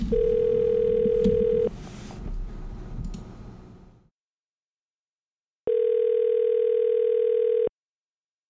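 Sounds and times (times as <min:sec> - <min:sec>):
telephone dial tone after a disconnected call: 0:00.1 - 0:01.7, 0:05.7 - 0:07.7.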